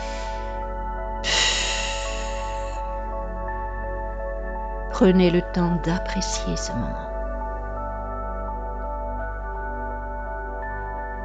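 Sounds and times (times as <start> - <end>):
long breathy exhale during a guided meditation: 0.0 - 2.9
soft sustained music: 0.0 - 11.2
speech: 5.0 - 7.1.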